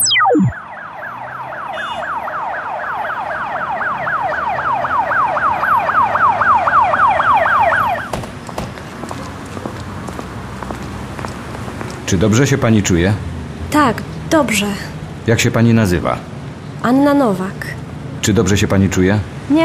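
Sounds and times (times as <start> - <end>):
ambulance siren wailing in a fast up-and-down pattern: 0.0 - 8.2
speech: 12.1 - 19.6.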